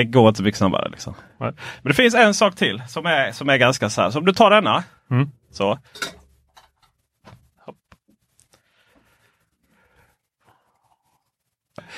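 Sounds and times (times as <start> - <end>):
speech: 0.0 - 6.2
clinks and knocks of an external SSD dropped into a glass of water: 5.9 - 6.8.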